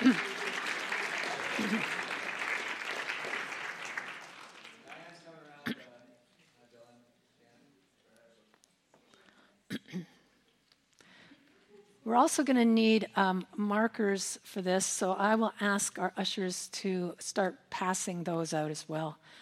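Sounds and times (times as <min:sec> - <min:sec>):
crowd applauding: 0:00.0 - 0:05.4
speech: 0:01.6 - 0:02.0, 0:12.2 - 0:19.4.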